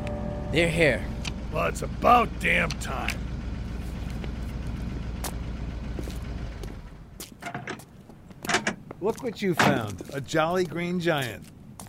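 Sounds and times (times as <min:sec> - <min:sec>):
truck engine rumbling and sputtering as it arrives: 0:00.0 - 0:10.2
speech: 0:00.5 - 0:03.3, 0:09.0 - 0:11.5
short clanks: 0:06.6 - 0:10.0.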